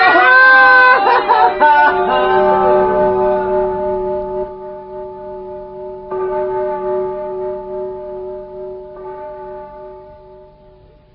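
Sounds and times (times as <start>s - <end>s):
laughter: 0.0s - 3.6s
church bells ringing noon: 0.0s - 11.1s.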